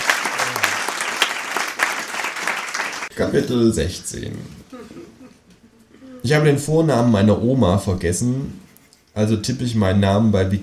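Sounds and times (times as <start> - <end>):
audience applause: 0.0 - 3.1
speech: 3.2 - 5.1, 6.2 - 8.6, 9.2 - 10.6.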